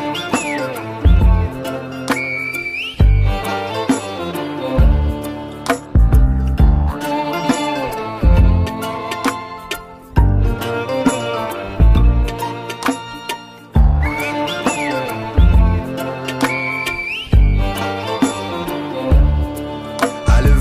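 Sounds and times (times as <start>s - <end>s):
rhythmic music with a deep thumping beat: 0.3s - 2.3s, 3.0s - 4.1s, 4.8s - 16.6s, 17.3s - 20.5s
short high whistled tones: 2.0s - 3.6s, 13.9s - 15.5s, 16.2s - 18.4s.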